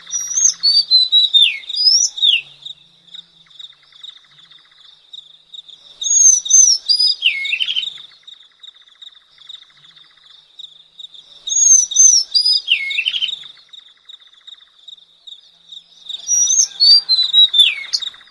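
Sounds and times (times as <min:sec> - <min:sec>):
Madagascar magpie-robin whistled slurs and chirps: 0:00.0 - 0:02.6, 0:06.0 - 0:08.0, 0:11.5 - 0:13.4, 0:16.2 - 0:18.2.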